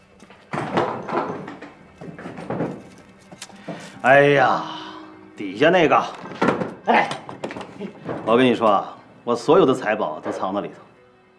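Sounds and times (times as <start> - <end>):
cabinet door wooden thumps and rattles: 0.1 - 4.0, 6.2 - 8.8
speech: 4.0 - 4.8, 5.4 - 6.3, 6.9 - 7.2, 7.8 - 10.9.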